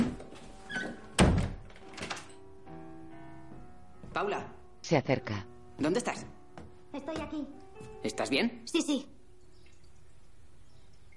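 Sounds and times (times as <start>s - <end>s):
toilet door pushed shut: 0.8s - 2.3s
speech: 4.2s - 6.4s, 7.0s - 9.1s.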